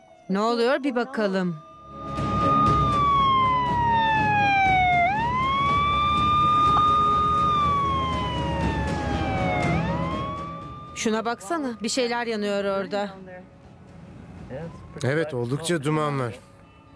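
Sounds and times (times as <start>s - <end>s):
speech: 0.3s - 1.7s, 11.0s - 13.5s, 14.5s - 16.5s
ambulance siren wailing in a quiet town: 1.6s - 12.7s, 14.5s - 15.5s.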